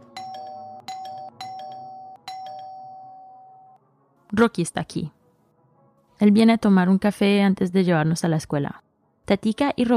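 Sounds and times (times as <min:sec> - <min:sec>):
electronic doorbell ringing: 0:00.0 - 0:03.8
speech: 0:04.3 - 0:05.2, 0:06.2 - 0:09.9.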